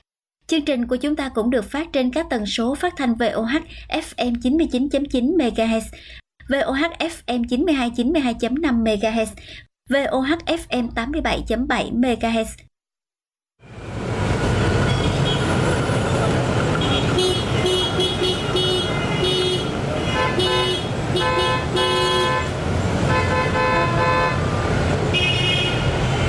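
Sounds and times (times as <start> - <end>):
speech: 0.5 - 12.7
constant loud street traffic rumble: 13.7 - 26.2
car horns honking in busy street traffic: 14.6 - 26.2.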